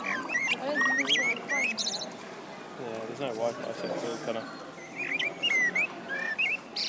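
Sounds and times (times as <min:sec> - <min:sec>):
blackbird singing on a summer evening: 0:00.0 - 0:02.1, 0:03.7 - 0:06.8
speech: 0:02.8 - 0:05.1.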